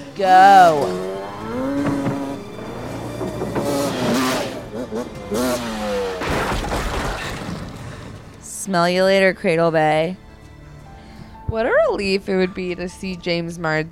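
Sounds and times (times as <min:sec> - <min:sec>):
dirt bike engine revving: 0:00.0 - 0:06.3
speech: 0:00.2 - 0:01.9, 0:08.7 - 0:10.2, 0:11.5 - 0:13.8.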